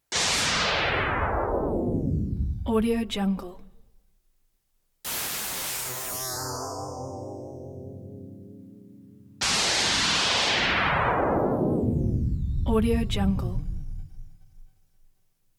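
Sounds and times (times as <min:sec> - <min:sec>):
descending throbby synth zap tones: 0:00.1 - 0:02.8, 0:05.1 - 0:14.8.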